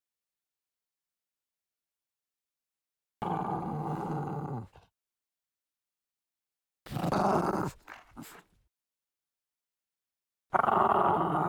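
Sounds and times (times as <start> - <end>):
French bulldog snarling with deep raspy growls: 3.2 - 4.9, 6.9 - 8.5, 10.5 - 11.4.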